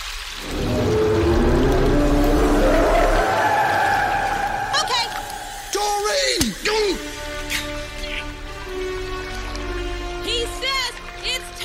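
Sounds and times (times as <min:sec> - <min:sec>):
steady wash of rushing water: 0:00.0 - 0:11.6
long low whale call: 0:00.4 - 0:06.2.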